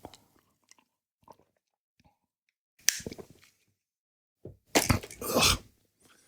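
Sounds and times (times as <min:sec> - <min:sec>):
quiet mouth clicks and gulps: 0:00.0 - 0:02.1, 0:04.8 - 0:05.6
slurp of a sip of coffee followed by swallowing: 0:04.8 - 0:05.6
speech: 0:05.3 - 0:05.6.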